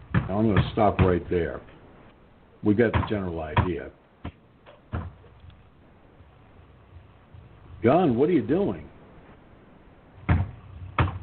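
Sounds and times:
heavy thuds: 0:00.0 - 0:02.1, 0:02.8 - 0:07.8, 0:10.2 - 0:11.2
speech: 0:00.3 - 0:01.8, 0:02.6 - 0:04.0, 0:07.8 - 0:08.9.

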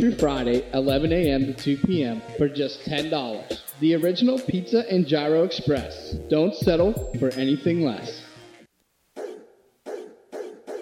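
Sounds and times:
speech: 0:00.0 - 0:08.2
dog barking: 0:09.2 - 0:10.7.

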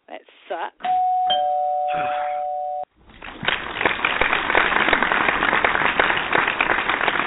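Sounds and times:
electronic doorbell ringing: 0:00.8 - 0:02.9
clapping and cheering applause: 0:03.1 - 0:07.2.

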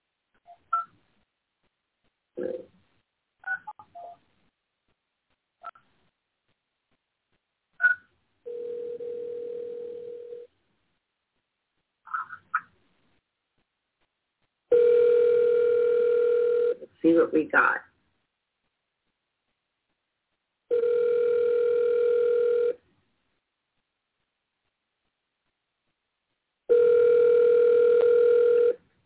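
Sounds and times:
steady telephone tone: 0:08.5 - 0:10.5, 0:14.7 - 0:16.8, 0:20.7 - 0:22.8, 0:26.7 - 0:28.8
speech: 0:17.1 - 0:17.9.

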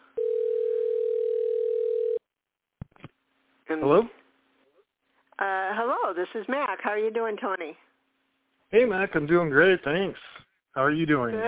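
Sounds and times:
telephone dial tone: 0:00.2 - 0:02.2
speech: 0:03.7 - 0:04.2, 0:06.2 - 0:07.9, 0:08.7 - 0:11.4.

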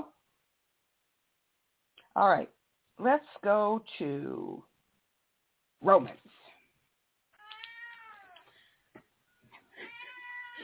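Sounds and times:
speech: 0:02.2 - 0:04.7, 0:05.8 - 0:06.4
cat meowing to get into a cat food bag: 0:07.4 - 0:08.4, 0:09.8 - 0:10.6.

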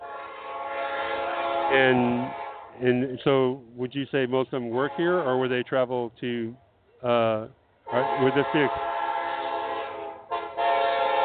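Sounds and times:
Union Pacific train horn at a railroad museum festival in Rosenberg, Texas: 0:00.0 - 0:02.9, 0:04.7 - 0:05.3, 0:07.9 - 0:11.2
speech: 0:01.7 - 0:08.9.

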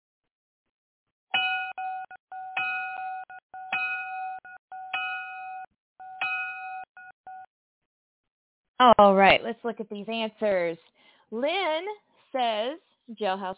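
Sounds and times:
electronic bell ringing: 0:01.4 - 0:07.5
speech: 0:08.8 - 0:13.5.

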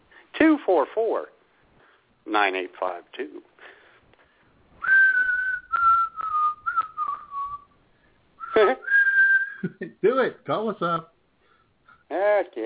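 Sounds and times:
speech: 0:00.5 - 0:01.4, 0:02.2 - 0:03.5, 0:08.6 - 0:08.8, 0:09.6 - 0:11.1, 0:12.1 - 0:12.6
person whistling sustained wavering mid-pitched notes: 0:04.8 - 0:07.7, 0:08.4 - 0:09.7.

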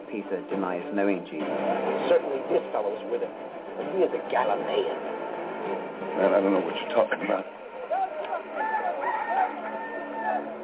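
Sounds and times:
speech: 0:00.1 - 0:07.6
rooster crowing: 0:07.8 - 0:10.6.

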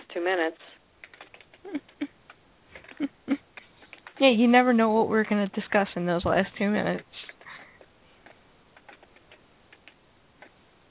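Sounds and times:
speech: 0:00.2 - 0:00.8, 0:01.6 - 0:02.1, 0:03.0 - 0:03.2, 0:04.2 - 0:07.3
fast keyboard typing: 0:01.0 - 0:02.1, 0:02.8 - 0:04.4, 0:07.8 - 0:10.5.

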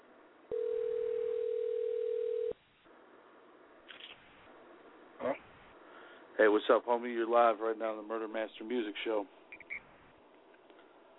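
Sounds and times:
telephone ringing tone while placing a call: 0:00.5 - 0:02.6
speech: 0:06.4 - 0:09.4.

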